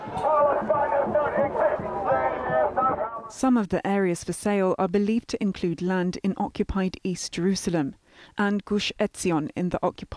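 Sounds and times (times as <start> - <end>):
large crowd of protesters shouting together: 0.0 - 3.3
speech: 3.3 - 10.1.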